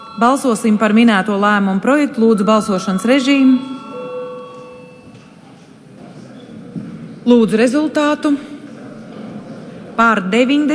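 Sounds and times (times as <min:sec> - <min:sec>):
electric bell ringing in a parliament chamber before a vote: 0:00.0 - 0:05.4
speech: 0:00.2 - 0:03.8, 0:07.2 - 0:08.5, 0:10.0 - 0:10.7
quiet murmur in a parliament chamber: 0:05.1 - 0:07.3, 0:08.4 - 0:10.0.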